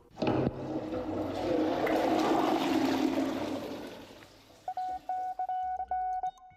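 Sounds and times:
toilet flushing: 0.0 - 5.3
short electronic beeps: 4.7 - 6.4.

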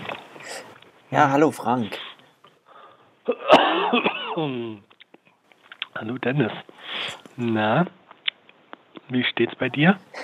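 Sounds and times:
speech: 1.1 - 2.0, 3.2 - 4.9, 6.0 - 8.0, 9.1 - 10.2
person coughing: 3.2 - 4.8
faint breath catches: 6.8 - 7.3.

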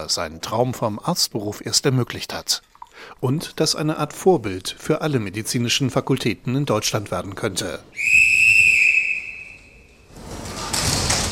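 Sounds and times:
speech: 0.0 - 8.3
loud shrill trill whistle blast: 8.0 - 10.0
rustling and thumping noise: 10.1 - 11.2.

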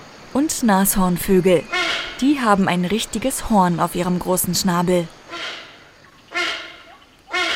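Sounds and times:
speech: 0.4 - 5.2
parrot squawking: 1.7 - 2.2, 5.3 - 7.5.

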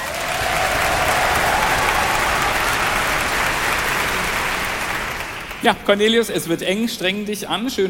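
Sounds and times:
large audience applause: 0.0 - 6.2
speech: 5.6 - 7.8.

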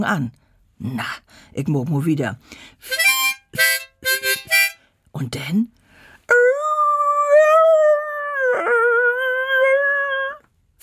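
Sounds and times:
speech: 0.0 - 3.8, 5.2 - 6.4
music played by someone: 2.8 - 4.8
terrier mix dog howling along to music: 6.4 - 10.4.

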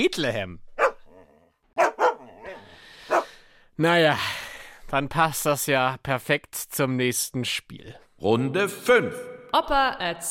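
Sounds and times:
speech: 0.0 - 0.7, 3.8 - 10.2
dog barking: 0.8 - 1.2, 1.8 - 3.3
dog whining: 0.8 - 3.2.

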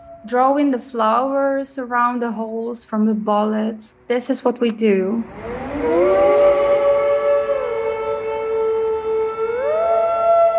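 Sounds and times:
siren wailing: 0.0 - 0.7, 5.2 - 10.5
speech: 0.2 - 6.0.

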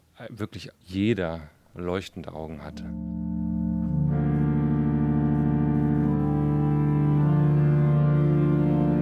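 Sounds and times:
speech: 0.2 - 3.2
new pipe organ playing sustained chords in a concert hall: 2.4 - 9.0.

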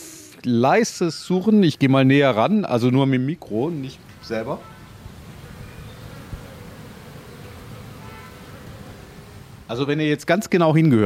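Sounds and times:
speech: 0.4 - 4.8, 9.7 - 11.0
many bees buzzing in and out of hive: 3.7 - 9.8.

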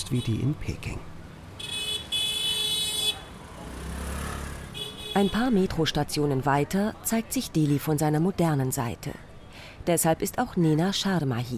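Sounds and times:
speech: 0.0 - 1.1, 5.2 - 9.2, 9.8 - 11.5
rumble of vehicle engines in busy Delhi street traffic: 0.0 - 7.8
car horn honking in Delhi street traffic: 1.6 - 3.5, 4.6 - 5.6.

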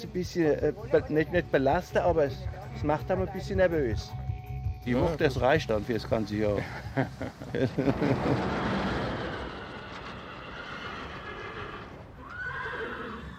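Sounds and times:
speech: 0.0 - 4.2, 4.8 - 8.7
laughter: 6.6 - 9.6
horse neighing with a long shrill whinny: 8.4 - 13.3.

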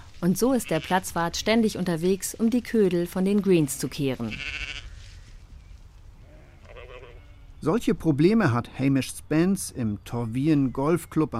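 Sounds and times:
speech: 0.2 - 4.8, 7.6 - 11.3
sheep bleating on a golf course: 4.1 - 5.0, 6.2 - 7.6.

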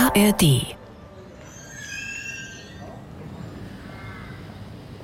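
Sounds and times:
speech: 0.1 - 0.7
rook colony cawing near a railway: 3.7 - 4.7.

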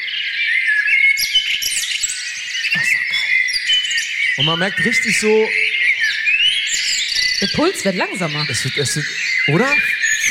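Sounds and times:
birds chirping in a high warbling trill: 0.0 - 10.2
sharp bird squawks: 2.2 - 10.2
speech: 4.4 - 5.6, 7.4 - 10.2.

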